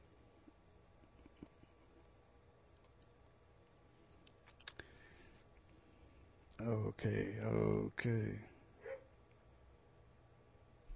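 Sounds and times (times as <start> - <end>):
quiet hum: 0.0 - 10.9
speech: 6.6 - 8.5
single short faint dog bark: 8.8 - 9.1.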